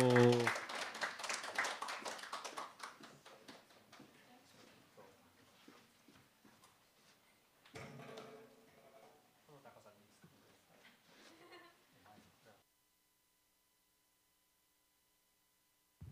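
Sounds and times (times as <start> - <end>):
audience applause: 0.0 - 4.0.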